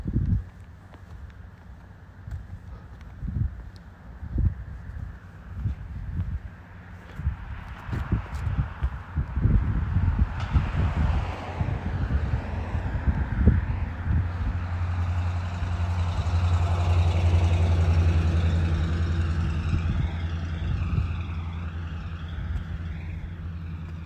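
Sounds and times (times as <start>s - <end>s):
gusty wind buffeting the microphone: 0.0s - 24.0s
heavy truck engine idling: 13.8s - 24.0s.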